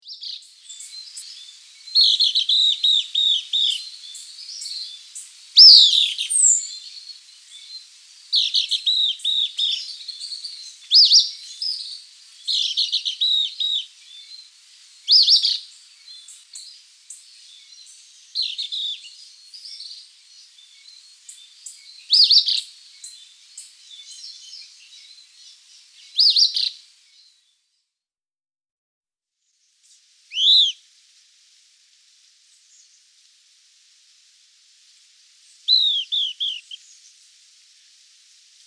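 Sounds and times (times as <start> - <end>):
Caribbean Elaenia singing in Guadeloupe: 0.0 - 27.3, 30.3 - 30.8, 35.6 - 37.0.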